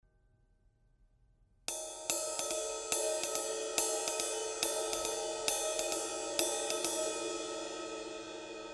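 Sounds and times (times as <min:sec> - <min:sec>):
Zildjian 21 inch Project 391 ride cymbal: 0:01.7 - 0:08.7.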